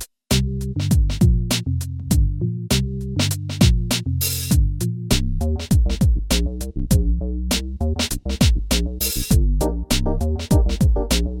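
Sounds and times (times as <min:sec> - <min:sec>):
swing mix grooves on a synthesizer: 0:00.3 - 0:11.3.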